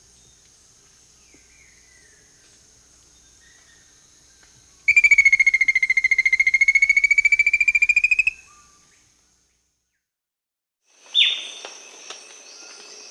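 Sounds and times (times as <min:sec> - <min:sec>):
rufous-capped antthrush trilling song in South America: 0:04.9 - 0:08.5.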